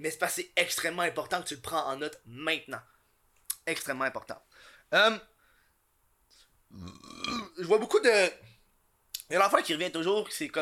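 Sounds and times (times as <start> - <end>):
speech: 0.0 - 3.0, 3.7 - 5.3, 6.7 - 8.5, 9.3 - 10.6
drawn-out burp: 6.7 - 7.6.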